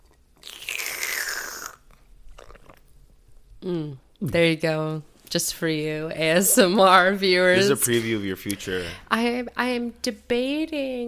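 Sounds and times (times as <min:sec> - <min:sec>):
person slurping coffee from a cup: 0:00.4 - 0:02.8
mouth and swallowing sounds: 0:00.8 - 0:02.9
speech: 0:03.6 - 0:11.0.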